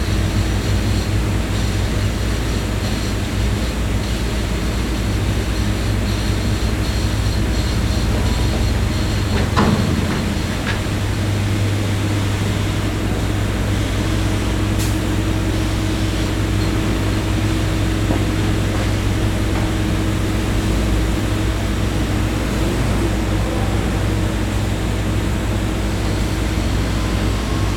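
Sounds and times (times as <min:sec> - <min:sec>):
low construction engine drone: 0:00.0 - 0:27.7
construction machinery clank: 0:06.5 - 0:12.9.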